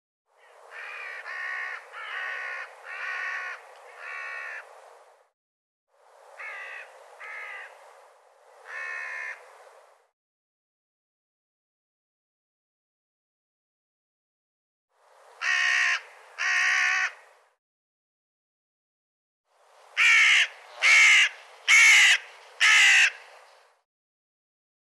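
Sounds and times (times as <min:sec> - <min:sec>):
bird cawing: 0:00.4 - 0:04.7, 0:06.4 - 0:07.8, 0:08.6 - 0:09.4, 0:15.4 - 0:17.3, 0:20.0 - 0:23.3.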